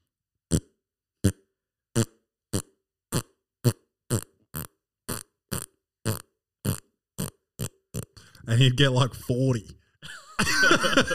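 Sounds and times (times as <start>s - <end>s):
voice imitating a fart: 0.5s - 8.3s
speech: 8.5s - 9.8s, 10.4s - 11.1s
laughter: 10.0s - 11.1s.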